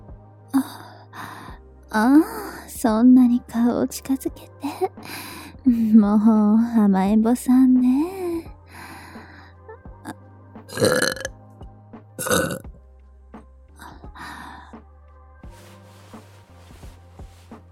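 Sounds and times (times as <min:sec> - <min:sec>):
breathy sounds: 0:00.6 - 0:01.7, 0:05.0 - 0:05.6, 0:08.7 - 0:09.6, 0:13.8 - 0:14.9
speech: 0:01.9 - 0:08.2
loud burp: 0:10.7 - 0:11.3, 0:12.2 - 0:12.8
soft throaty belches: 0:10.7 - 0:11.3, 0:12.2 - 0:12.8.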